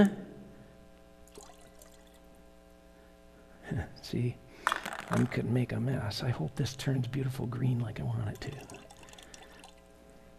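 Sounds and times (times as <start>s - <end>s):
speech: 0.0s - 0.2s, 3.7s - 4.4s, 5.1s - 8.8s
steady low electrical hum: 0.0s - 10.3s
tap water being poured: 1.3s - 2.2s, 8.4s - 9.8s.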